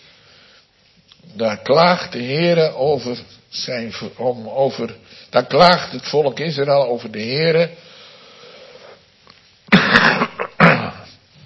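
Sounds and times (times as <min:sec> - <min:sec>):
speech: 0:01.4 - 0:07.9
person giving a Bible talk coughing: 0:09.7 - 0:11.2.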